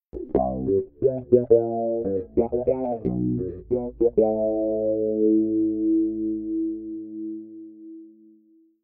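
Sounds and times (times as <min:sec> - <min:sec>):
bass with flanger effect: 0:00.2 - 0:07.1.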